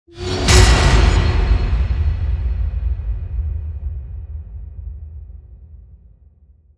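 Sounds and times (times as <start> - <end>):
trailer-style metallic hit: 0.1 - 4.2.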